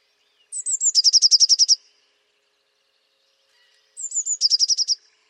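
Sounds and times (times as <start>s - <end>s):
Eurasian blue tit singing thin high notes and rapid trill: 0.5s - 1.8s, 4.0s - 5.0s.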